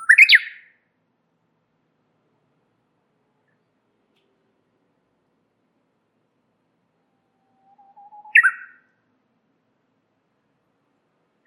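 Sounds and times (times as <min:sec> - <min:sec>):
warbler phrase of soft low whistles and a loud chirpy flourish: 0:00.0 - 0:00.6, 0:07.7 - 0:08.8.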